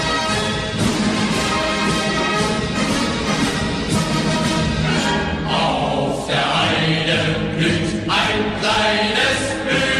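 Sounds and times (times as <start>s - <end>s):
German march song: 0.0s - 9.9s.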